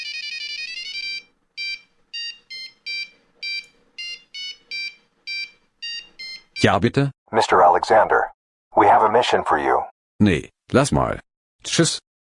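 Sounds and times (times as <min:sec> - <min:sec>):
phone ringtone signalling an incoming call: 0:00.0 - 0:06.7
speech: 0:06.6 - 0:12.1.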